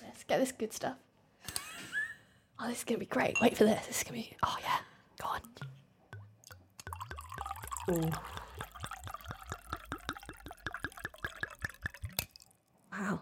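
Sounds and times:
speech: 0:00.3 - 0:01.1, 0:02.6 - 0:05.7, 0:07.9 - 0:08.4
tequila glugging from a bottle into a glass: 0:05.2 - 0:12.8.

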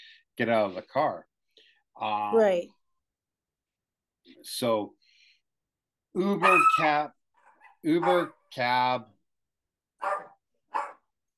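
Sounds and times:
speech: 0:00.4 - 0:01.3, 0:02.0 - 0:02.8, 0:04.3 - 0:05.0, 0:06.1 - 0:07.2, 0:07.8 - 0:09.1
dog barking: 0:06.4 - 0:08.4, 0:10.0 - 0:11.1.

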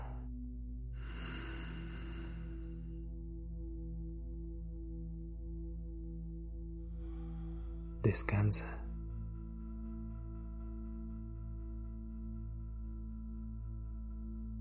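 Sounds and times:
steady low musical drone: 0:00.0 - 0:14.5
slow deep breathing during a guided relaxation exercise: 0:00.9 - 0:03.4, 0:06.6 - 0:08.0
speech: 0:08.0 - 0:08.8.

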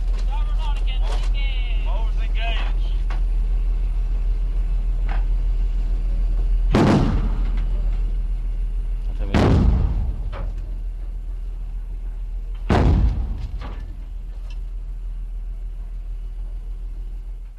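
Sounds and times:
steady low drone: 0:00.0 - 0:17.5
person talking: 0:00.2 - 0:03.0
starboard Bofors gun firing aboard a naval ship: 0:06.7 - 0:07.7, 0:09.3 - 0:10.6, 0:12.6 - 0:14.0.

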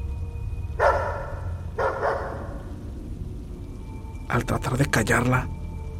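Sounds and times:
low rumbling background: 0:00.0 - 0:05.9
small dog barking in an enclosed room: 0:00.8 - 0:02.6
speech: 0:04.3 - 0:05.6.

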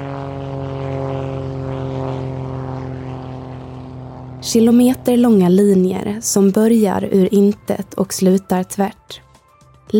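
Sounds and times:
1930s propeller airplane droning overhead above a desert landscape: 0:00.0 - 0:09.9
speech: 0:04.4 - 0:09.2.

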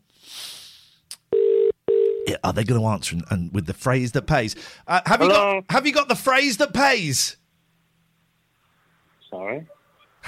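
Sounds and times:
soft hiss on a phone line: 0:00.1 - 0:01.0
telephone ringback tones heard through a phone line: 0:01.3 - 0:02.2
speech: 0:02.3 - 0:07.4, 0:09.4 - 0:10.2.

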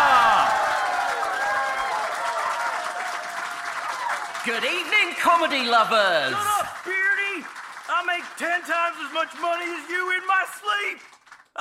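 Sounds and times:
crowd whooping and cheering: 0:00.0 - 0:04.8
large audience clapping: 0:00.0 - 0:11.5
speech: 0:04.4 - 0:07.0, 0:08.4 - 0:11.2.

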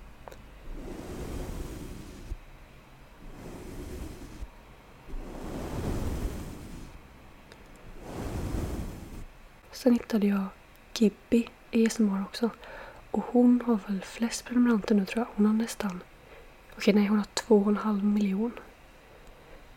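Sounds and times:
ASMR brushing strokes across a microphone: 0:00.7 - 0:02.4, 0:03.2 - 0:04.5, 0:05.1 - 0:07.0
speech: 0:09.8 - 0:16.1, 0:16.8 - 0:18.7.

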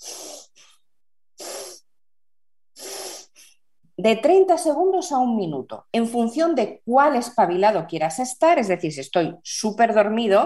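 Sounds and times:
quick forceful breaths in and out through the nose: 0:00.0 - 0:00.8, 0:01.4 - 0:01.9, 0:02.8 - 0:03.6
speech: 0:04.0 - 0:10.4.

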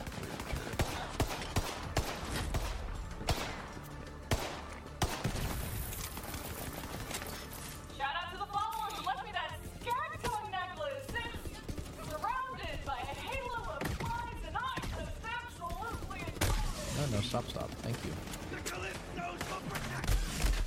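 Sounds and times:
rapid video game gunfire: 0:00.0 - 0:03.7, 0:04.3 - 0:07.4, 0:09.5 - 0:20.6
people talking over the game action: 0:08.0 - 0:16.6.

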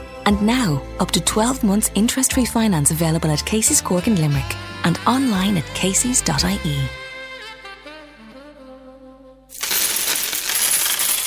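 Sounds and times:
soft melodic tune: 0:00.0 - 0:08.2
speech: 0:00.3 - 0:07.0
coins dropping as money is banked: 0:09.5 - 0:11.2.

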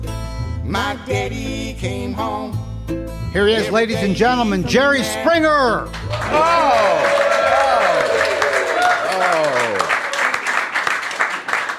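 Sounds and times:
speech: 0:00.7 - 0:07.3
studio audience applauding: 0:05.9 - 0:11.7.

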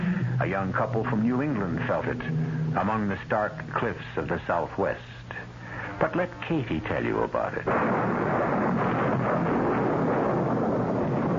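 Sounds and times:
stormy roar at night: 0:00.0 - 0:03.8, 0:07.8 - 0:11.3
thunder rumbling at night: 0:00.0 - 0:04.0, 0:07.7 - 0:11.3
speech: 0:00.4 - 0:05.2, 0:06.0 - 0:08.5.

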